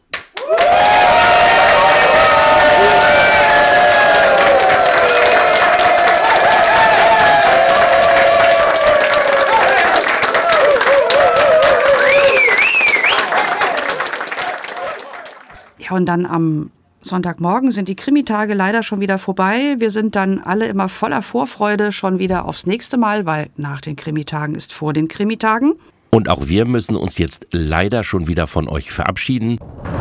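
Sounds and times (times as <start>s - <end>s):
large audience applauding radio plays at a crime-fiction festival: 0.1s - 15.7s
loud audience cheers and whoops at a crime-fiction festival: 0.4s - 15.7s
speech: 16.0s - 29.9s.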